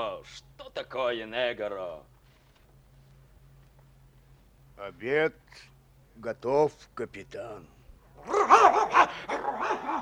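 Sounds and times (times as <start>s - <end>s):
speech: 0.0s - 2.2s, 4.8s - 10.0s
dog barking at a ship's cook: 8.2s - 10.0s.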